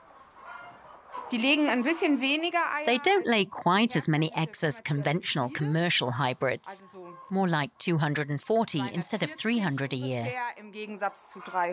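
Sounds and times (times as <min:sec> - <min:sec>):
dual-purpose chicken tonal call: 0:00.0 - 0:01.4
dual-purpose chickens clucking: 0:00.0 - 0:10.3, 0:10.9 - 0:11.7
speech: 0:01.3 - 0:11.7.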